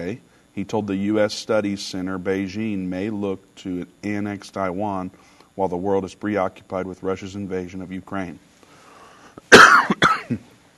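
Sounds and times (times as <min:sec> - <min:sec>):
speech: 0:00.0 - 0:08.5, 0:10.3 - 0:10.5
dry coughs from allergies: 0:09.4 - 0:10.4.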